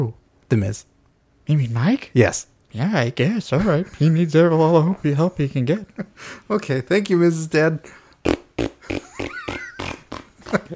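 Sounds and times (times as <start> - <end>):
speech: 0.0 - 0.9, 1.5 - 9.1
farting: 8.2 - 10.7.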